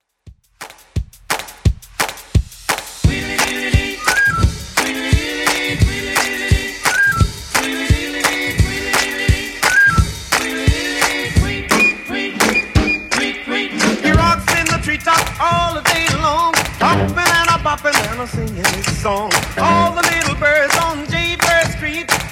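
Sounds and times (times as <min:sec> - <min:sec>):
music: 0:00.0 - 0:22.3.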